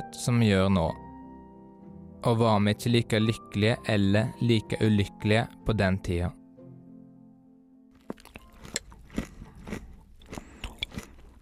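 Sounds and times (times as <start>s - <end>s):
speech: 0.0s - 1.0s, 2.2s - 6.4s
crunchy breakfast cereal with plenty of milk being eaten: 8.0s - 11.4s.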